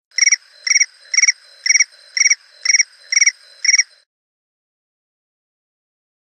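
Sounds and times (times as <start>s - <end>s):
cricket chirping: 0.1s - 4.1s.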